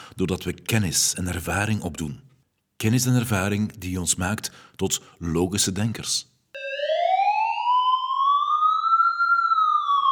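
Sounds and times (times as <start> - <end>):
speech: 0.2 - 6.9
ambulance siren wailing: 6.6 - 10.1.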